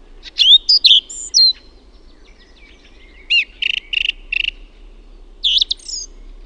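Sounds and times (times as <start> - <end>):
song thrush singing: 0.0 - 6.4.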